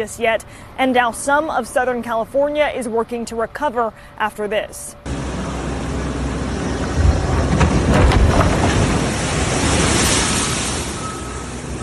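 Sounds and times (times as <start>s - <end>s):
speech: 0.0s - 5.2s
heavy storm surf crashing on beachfront properties: 5.1s - 11.8s.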